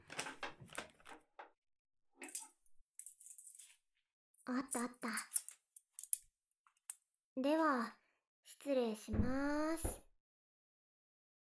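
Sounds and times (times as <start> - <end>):
small objects clattering while rummaging in a drawer for scissors: 2.2 - 3.8, 4.6 - 6.2
speech: 4.5 - 5.3, 7.4 - 8.0, 8.6 - 10.0.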